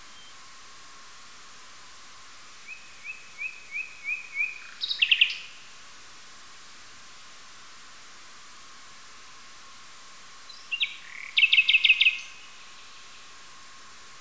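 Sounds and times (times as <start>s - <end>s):
nightingale song with whistles and rattling notes: 0.0s - 0.4s, 2.6s - 5.7s, 10.4s - 13.4s.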